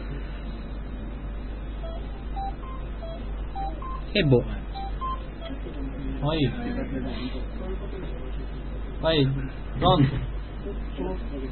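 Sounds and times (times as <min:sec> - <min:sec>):
steady low hum: 0:00.0 - 0:11.5
telephone keypad beeps as a number is dialed: 0:01.8 - 0:05.5
speech: 0:04.1 - 0:04.6, 0:06.2 - 0:11.5.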